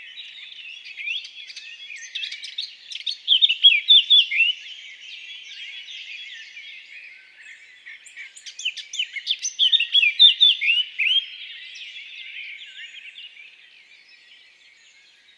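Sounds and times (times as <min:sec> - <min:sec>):
Eurasian blackcap singing: 0:00.0 - 0:06.7, 0:08.0 - 0:13.4.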